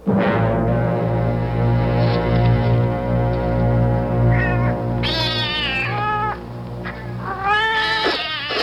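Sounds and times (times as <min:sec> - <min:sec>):
steady low droning hum: 0:00.4 - 0:07.9
several cats meowing and yowling waiting to be fed: 0:04.3 - 0:06.4, 0:07.2 - 0:08.6.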